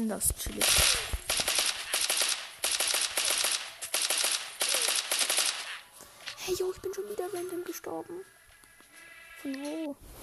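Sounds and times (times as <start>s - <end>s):
speech: 0.0s - 1.1s, 6.5s - 8.4s, 9.4s - 10.2s
rapid video game gunfire in short bursts: 0.6s - 5.8s.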